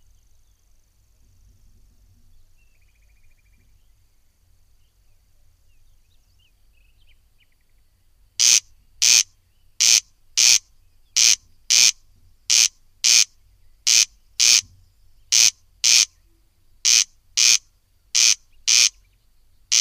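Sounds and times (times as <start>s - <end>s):
corncrake rasping double-note calls: 8.4s - 16.2s, 16.8s - 19.1s.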